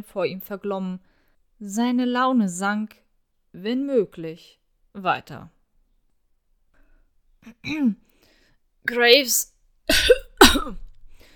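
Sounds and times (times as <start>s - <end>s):
speech: 0.0s - 3.0s, 3.6s - 5.6s, 7.4s - 8.1s, 8.8s - 10.8s
rough coughs: 9.9s - 10.9s.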